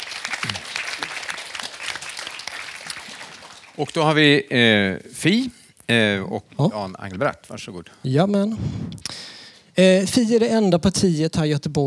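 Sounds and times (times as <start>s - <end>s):
audience applause: 0.0s - 4.2s
speech: 3.8s - 9.0s, 9.8s - 11.8s.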